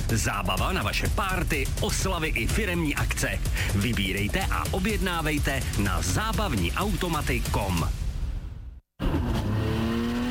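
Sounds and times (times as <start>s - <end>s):
speech: 0.1s - 8.0s
drift car engine roaring and revving at a street drifting race: 9.0s - 10.2s.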